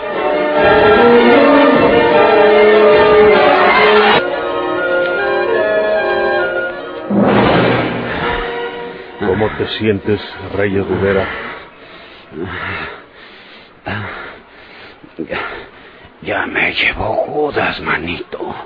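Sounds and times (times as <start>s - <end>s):
chapel bells tolling a death knell: 0.0s - 11.0s
speech: 9.6s - 11.5s, 12.3s - 13.0s, 13.8s - 14.2s, 15.2s - 18.6s.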